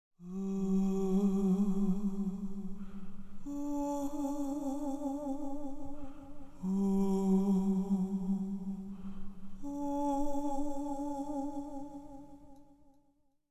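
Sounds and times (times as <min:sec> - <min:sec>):
ghost singing creepy and spooky: 0:00.2 - 0:09.0, 0:09.6 - 0:12.2.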